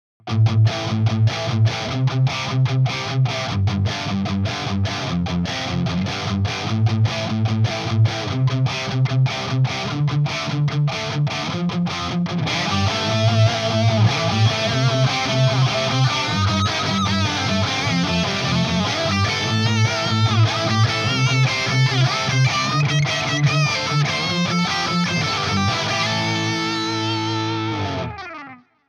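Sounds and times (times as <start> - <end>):
guitar pick strumming: 0.3 - 28.8.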